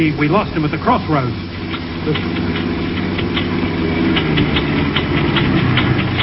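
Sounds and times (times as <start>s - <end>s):
speech: 0.0s - 2.8s
car engine breaking down rumbling: 0.0s - 6.2s
rapid irregular metallic engine knocking: 1.5s - 6.2s.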